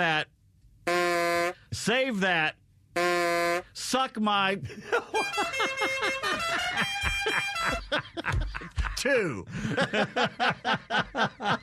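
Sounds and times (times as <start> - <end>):
speech: 0.0 - 0.4, 1.7 - 11.6
comedic honk sound effect: 0.9 - 1.6, 3.0 - 3.8, 5.1 - 8.0
laughter: 4.6 - 11.6.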